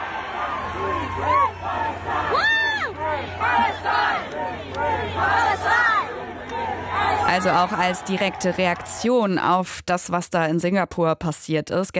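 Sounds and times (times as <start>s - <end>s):
large concert audience chanting a protest slogan in unison: 0.0s - 9.0s
speech: 7.4s - 11.9s.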